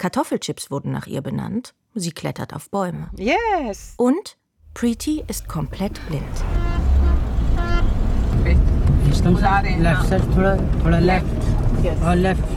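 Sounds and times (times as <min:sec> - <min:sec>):
speech: 0:00.0 - 0:06.8, 0:08.4 - 0:12.5
car engine rumbling on an empty parking lot: 0:04.6 - 0:12.5.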